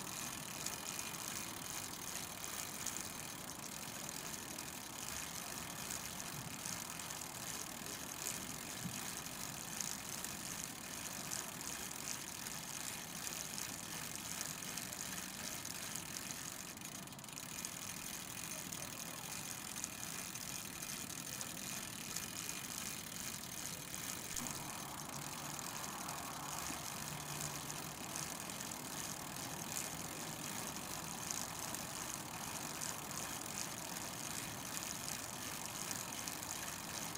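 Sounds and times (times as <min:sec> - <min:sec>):
bicycle chain and gears whirring and ticking while pedaled: 0:00.0 - 0:37.1
road and wind noise: 0:24.4 - 0:33.3.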